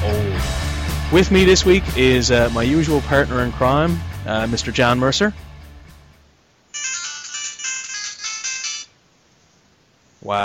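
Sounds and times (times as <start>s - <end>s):
speech: 1.1s - 5.4s, 10.2s - 10.4s
bright electronic Android phone ringtone: 6.8s - 9.0s.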